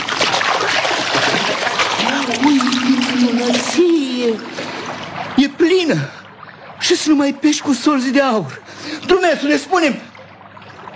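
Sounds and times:
fishing net thrown into water splashing: 0.0 - 5.4
speech: 4.2 - 4.6, 5.4 - 6.2, 6.9 - 10.1.

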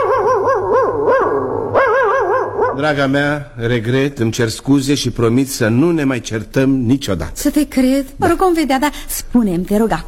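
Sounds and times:
dog barking and yowling in high-pitched cries: 0.0 - 2.9
speech: 2.8 - 10.0.

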